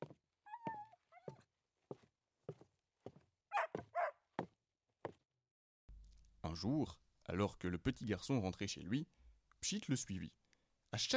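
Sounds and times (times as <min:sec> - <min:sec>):
small dog yapping excitedly: 0:00.5 - 0:01.4, 0:03.5 - 0:04.2
speech: 0:06.5 - 0:11.1.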